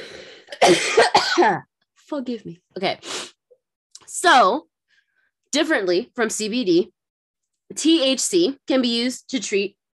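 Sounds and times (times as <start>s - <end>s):
person coughing with harsh chesty hacks: 0.4s - 1.7s
speech: 0.7s - 3.2s, 4.2s - 4.7s, 5.5s - 7.0s, 7.7s - 9.8s.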